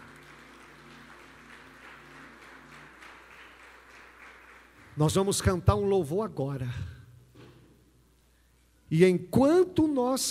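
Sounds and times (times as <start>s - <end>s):
large crowd applauding in a reverberant hall: 0.0s - 5.6s
speech: 5.0s - 7.0s, 8.9s - 10.2s.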